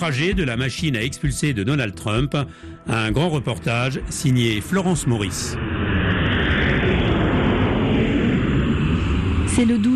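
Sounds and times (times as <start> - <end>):
speech: 0.0 - 5.8, 9.6 - 9.9
jet engines of an airplane landed on airport tarmac in Bangui at night: 2.7 - 9.9.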